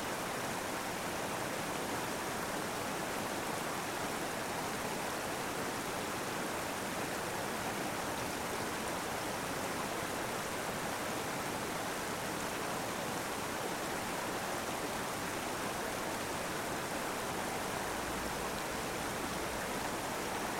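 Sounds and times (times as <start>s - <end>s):
small waterfall below a Rocky Mountains lake: 0.0s - 20.5s.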